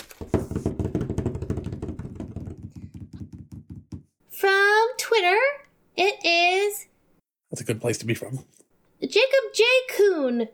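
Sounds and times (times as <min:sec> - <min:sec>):
drum roll tapped by hand on a tabletop: 0:00.2 - 0:04.0
speech: 0:04.4 - 0:06.8, 0:07.6 - 0:10.5.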